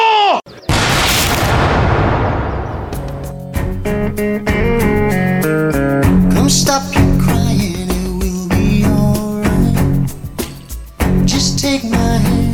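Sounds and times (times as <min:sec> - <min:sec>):
firing squad volley of gunfire: 0:00.7 - 0:03.3
music with a steady beat: 0:03.0 - 0:12.5.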